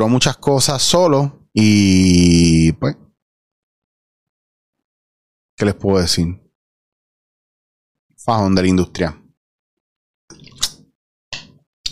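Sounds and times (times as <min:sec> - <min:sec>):
speech: 0:00.0 - 0:03.0, 0:05.6 - 0:06.4, 0:08.2 - 0:09.2
sipping and swallowing water: 0:10.3 - 0:11.5.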